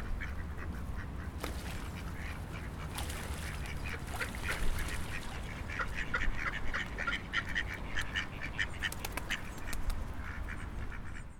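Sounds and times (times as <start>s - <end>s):
ducks quacking near the Seine: 0.0s - 11.3s.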